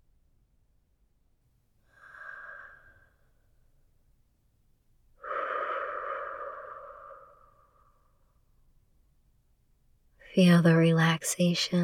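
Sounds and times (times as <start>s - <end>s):
slow deep breathing in and out during a relaxation exercise: 1.8s - 3.6s, 5.2s - 8.4s
speech: 10.4s - 11.8s.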